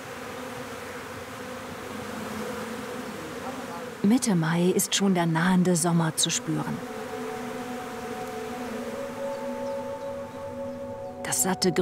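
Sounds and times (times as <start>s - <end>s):
honeybee colony buzzing at an old log hive in Planten un Blomen park: 0.0s - 11.8s
speech: 4.0s - 7.0s, 11.4s - 11.8s.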